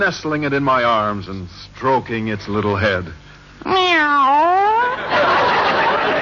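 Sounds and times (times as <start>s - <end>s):
speech: 0.0s - 5.4s
cat meowing: 3.6s - 5.0s
laughter: 4.8s - 6.2s.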